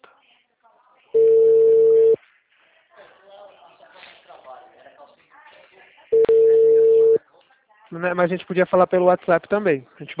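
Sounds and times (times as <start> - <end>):
telephone line tone while placing a call: 1.2 - 2.2, 6.2 - 7.2
speech: 7.9 - 10.1.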